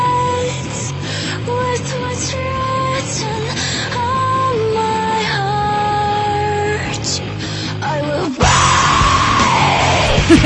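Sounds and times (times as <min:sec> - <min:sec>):
dense musical backdrop of a song: 0:00.0 - 0:10.4
girl screaming: 0:08.4 - 0:10.3.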